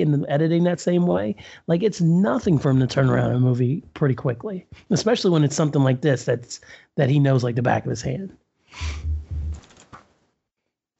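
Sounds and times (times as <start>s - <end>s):
speech: 0.0s - 9.1s
thumps: 8.8s - 10.1s.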